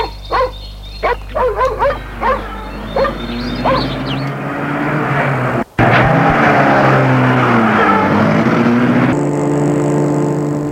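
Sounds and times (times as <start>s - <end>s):
dog barking: 0.0s - 4.3s, 7.7s - 8.3s
car engine starting and driving off: 1.2s - 10.6s.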